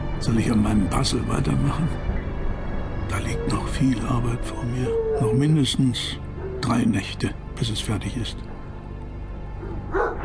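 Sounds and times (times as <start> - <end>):
speech: 0.2 - 2.1, 3.1 - 8.5
watchful dog barking: 9.6 - 10.2.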